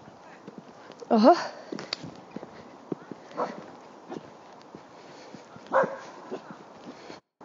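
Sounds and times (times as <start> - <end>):
speech: 1.1 - 1.6, 3.4 - 3.6
dog barking: 3.3 - 3.6, 5.5 - 6.7.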